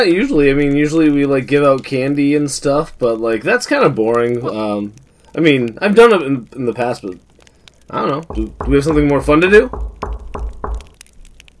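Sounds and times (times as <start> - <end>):
speech: 0.0 - 7.3, 7.9 - 10.4
knocking on a wooden door by trick-or-treaters: 8.3 - 11.0.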